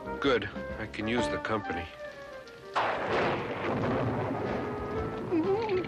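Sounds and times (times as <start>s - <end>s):
speech: 0.2s - 2.0s
thunder crack and rumble in a monster movie: 2.7s - 5.7s.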